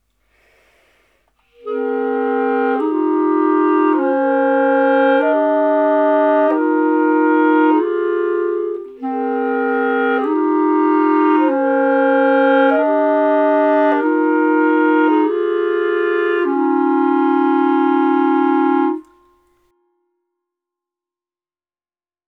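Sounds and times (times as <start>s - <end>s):
clarinet: 1.4s - 19.5s.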